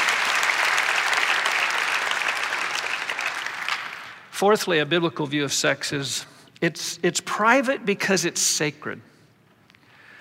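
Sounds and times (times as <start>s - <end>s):
roomful of people clapping: 0.0s - 4.3s
speech: 4.4s - 9.1s.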